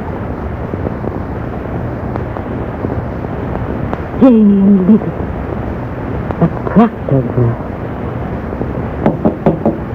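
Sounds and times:
low steady hum: 0:00.0 - 0:09.9
speech: 0:04.2 - 0:05.2, 0:06.4 - 0:07.6
sharp knocks on a door: 0:09.0 - 0:09.8.

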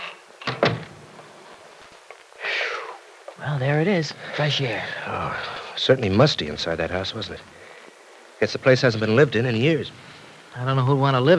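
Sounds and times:
door swinging shut with a heavier thud: 0:00.4 - 0:01.1
soft rush of air: 0:00.9 - 0:10.8
speech: 0:03.4 - 0:07.6, 0:08.4 - 0:11.3.

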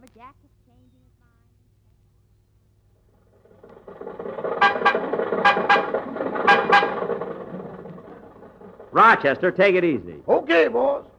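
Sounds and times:
old car engine rumbling and sputtering: 0:02.8 - 0:11.1
old car horn honking: 0:04.4 - 0:07.9
speech: 0:09.0 - 0:11.1.

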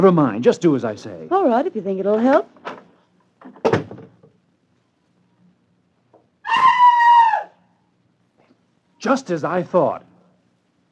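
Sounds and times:
speech: 0:00.0 - 0:02.8, 0:09.0 - 0:10.1
bathroom door thudding shut with a short rattle: 0:03.6 - 0:04.2
muffled scream from inside a bathroom: 0:06.4 - 0:07.7.

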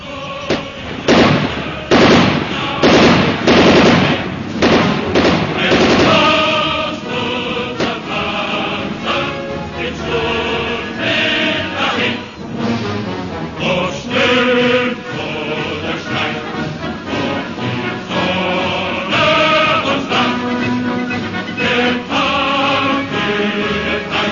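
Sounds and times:
lingering tonal wash: 0:00.0 - 0:24.3
rapid gunfire in a dramatized police standoff with an armed man: 0:00.5 - 0:06.8.

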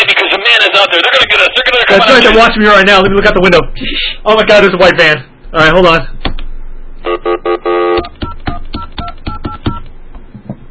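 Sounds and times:
speech: 0:00.8 - 0:06.4, 0:07.0 - 0:08.1
touch-tone dialing beeps as a phone is dialed: 0:07.9 - 0:09.8.

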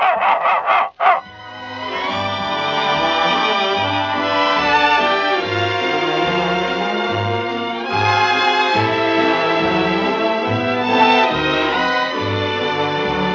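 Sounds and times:
dog barking on command: 0:00.0 - 0:01.3
orchestral music in a dog food radio advertisement: 0:01.2 - 0:13.3.

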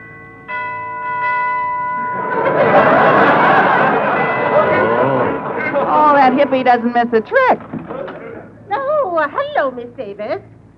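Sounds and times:
house doorbell chiming: 0:00.0 - 0:06.7
crowd murmuring and laughing: 0:02.0 - 0:08.8
speech: 0:06.3 - 0:07.8, 0:09.2 - 0:10.5.

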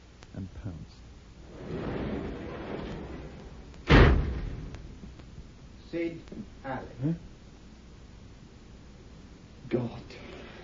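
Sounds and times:
roll-up garage door coming down: 0:01.4 - 0:05.0
speech: 0:05.9 - 0:07.3, 0:09.7 - 0:10.2.

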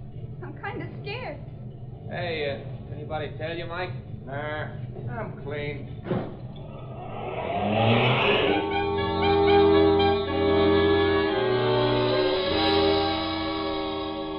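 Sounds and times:
speech: 0:02.1 - 0:06.4
car engine revving as it drives off in a hurry: 0:06.4 - 0:14.1.

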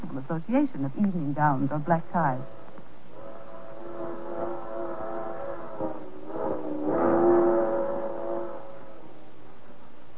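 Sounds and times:
rumble of rolling freight cars: 0:00.0 - 0:10.1
speech: 0:00.1 - 0:02.6
freight train locomotive whistle: 0:02.3 - 0:10.0.

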